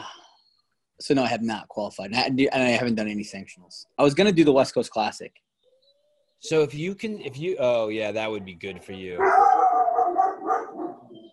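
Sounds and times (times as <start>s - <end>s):
speech: 1.0s - 5.5s, 6.4s - 9.7s
trained female dog howling and barking: 9.2s - 11.3s.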